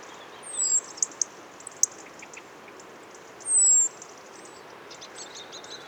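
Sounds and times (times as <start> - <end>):
European robin giving thin high whistled calls: 0.2 - 2.4, 3.4 - 5.8.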